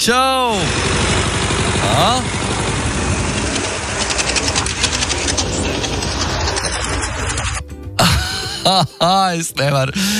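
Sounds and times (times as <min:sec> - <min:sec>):
speech: 0:00.0 - 0:01.0, 0:01.8 - 0:02.7, 0:08.6 - 0:10.1
tractor pulling a potato digger during a potato harvest: 0:00.0 - 0:07.8
fast rhythmic mechanical clattering of a potato digger: 0:00.7 - 0:07.8.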